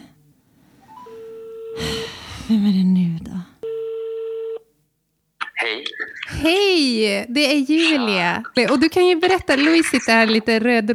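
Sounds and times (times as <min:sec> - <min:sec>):
telephone dialing tones as a call is placed: 0:01.2 - 0:01.8, 0:03.6 - 0:04.7
speech: 0:02.5 - 0:03.5, 0:06.4 - 0:10.9.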